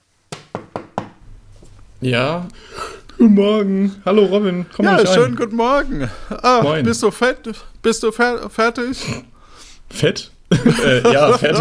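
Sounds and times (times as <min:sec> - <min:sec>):
knocking on a room door: 0:00.3 - 0:01.2
speech: 0:02.0 - 0:09.3, 0:09.9 - 0:11.5
laughter: 0:04.9 - 0:07.4, 0:10.5 - 0:11.5.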